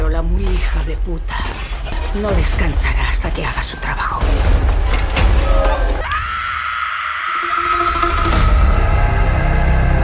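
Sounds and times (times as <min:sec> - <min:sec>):
speech: 0:00.1 - 0:04.8
loud sustained scream from a horror film: 0:06.0 - 0:10.0.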